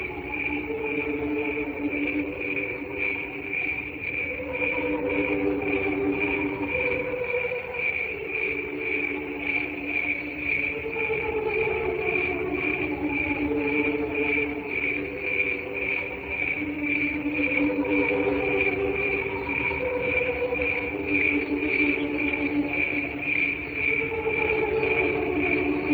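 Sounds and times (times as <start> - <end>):
cricket chirping: 0.0 - 25.9
low humming tones: 0.0 - 25.9.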